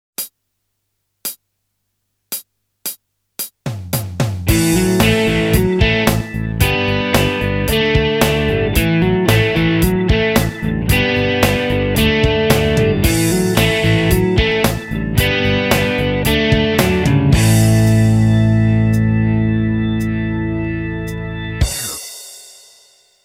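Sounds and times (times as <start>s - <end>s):
major pentatonic scale: 4.5s - 22.2s.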